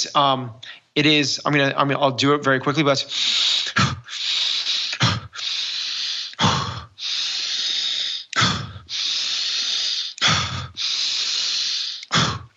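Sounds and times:
speech: 0.0 - 4.0
deep aggressive diaphragmatic breathing with hissing inhales and sharp exhales: 3.0 - 12.5.

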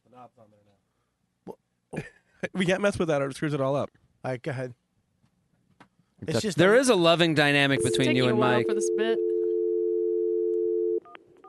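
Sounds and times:
faint noise: 0.0 - 9.6
speech: 0.2 - 4.8, 6.2 - 9.3
telephone dial tone: 7.8 - 11.4.

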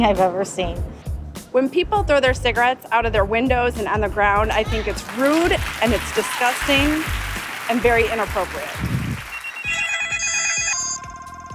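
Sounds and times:
speech: 0.0 - 9.0
electronic cell phone ringtone: 9.3 - 11.5.

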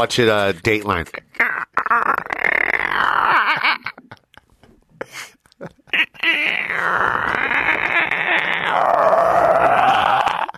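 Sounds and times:
speech: 0.0 - 1.5
person vocally imitating stomach gurgling after eating cereal: 1.1 - 4.0, 5.9 - 10.5.

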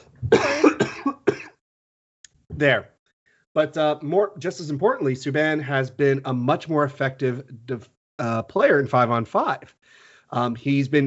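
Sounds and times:
person coughing: 0.2 - 1.6
speech: 2.6 - 3.0, 3.6 - 11.0.

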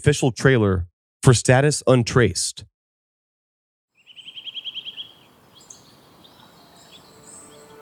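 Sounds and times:
speech: 0.0 - 2.7
bird trilling: 4.0 - 7.8
steady outdoor ambience: 4.0 - 7.8.

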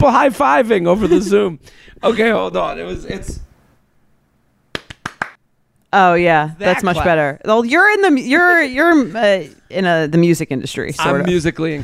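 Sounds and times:
speech: 0.0 - 3.5, 5.9 - 11.8
hand claps: 4.7 - 5.4.

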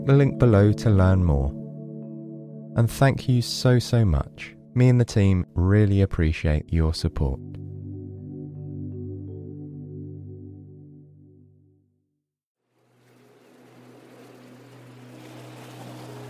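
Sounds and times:
speech: 0.0 - 1.6, 2.8 - 7.6
churning water from a passenger boat: 12.7 - 16.2
passenger boat engine droning: 12.8 - 16.2.

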